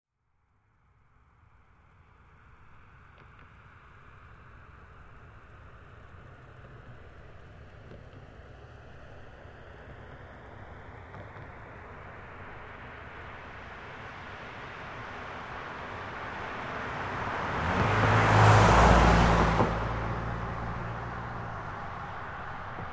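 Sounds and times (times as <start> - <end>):
2005 Toyota Highlander V6 car engine: 14.4 - 22.8.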